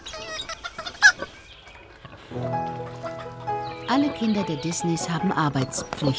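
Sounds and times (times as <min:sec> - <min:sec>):
chicken clucking: 0:00.0 - 0:01.5
speech: 0:02.3 - 0:02.9, 0:03.9 - 0:06.1.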